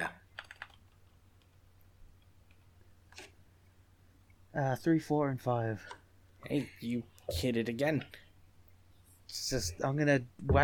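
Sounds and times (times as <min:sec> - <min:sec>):
typing on a computer keyboard: 0:00.3 - 0:01.6
low steady hum: 0:01.2 - 0:10.6
speech: 0:04.6 - 0:08.2, 0:09.3 - 0:10.6.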